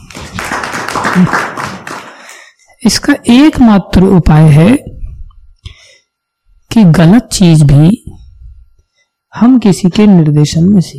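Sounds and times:
audience clapping at a talk: 0.0s - 2.6s
speech: 1.2s - 1.6s, 2.8s - 4.9s, 6.8s - 8.1s, 9.3s - 10.9s.

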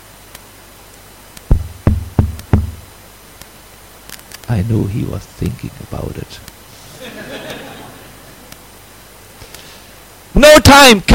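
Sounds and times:
firm knocking on a door: 1.5s - 2.9s
speech: 4.5s - 6.5s, 10.4s - 11.1s
laughter: 6.8s - 8.5s.

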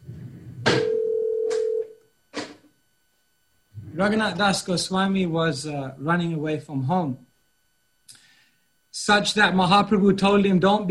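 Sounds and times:
phone ringing with a loud electronic tone: 0.7s - 2.0s
speech: 4.0s - 7.3s, 9.0s - 10.8s.

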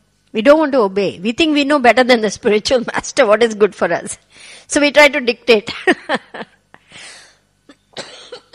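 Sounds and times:
speech: 0.3s - 7.1s
harsh coughing: 6.9s - 8.5s.

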